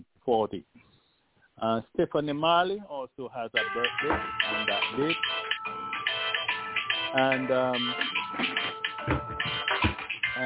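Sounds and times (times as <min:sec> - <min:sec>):
speech: 0:00.3 - 0:00.9, 0:01.6 - 0:05.5, 0:07.1 - 0:09.2
telephone ringing with an electronic ringtone: 0:03.6 - 0:10.4.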